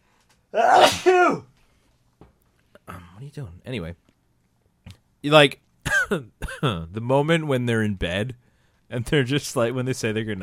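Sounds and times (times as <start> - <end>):
speech: 0.5 - 1.5, 3.2 - 4.0, 5.2 - 10.4
person sneezing: 0.6 - 1.5.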